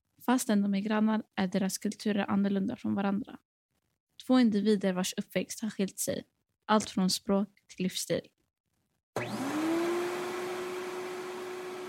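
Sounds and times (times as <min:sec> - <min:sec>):
speech: 0:00.2 - 0:03.5, 0:04.3 - 0:08.4
vacuum cleaner running in a bedroom: 0:09.2 - 0:11.8.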